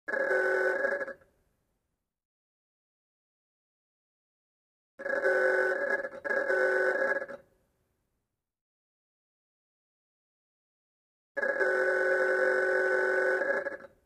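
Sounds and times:
old mechanical horn: 0.1 - 1.2, 5.0 - 7.4, 11.4 - 13.9.

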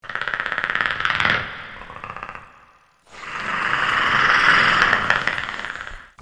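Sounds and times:
predator chattering: 0.0 - 6.1.

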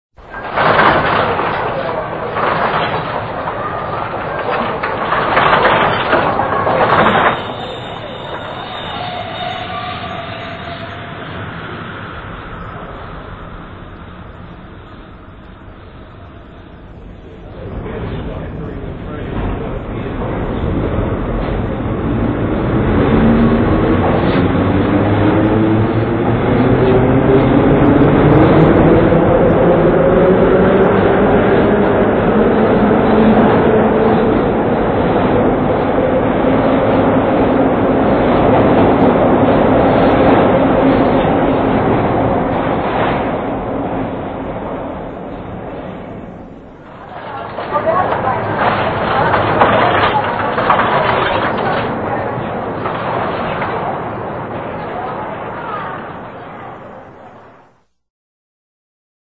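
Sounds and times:
metro train noise: 0.2 - 57.9.

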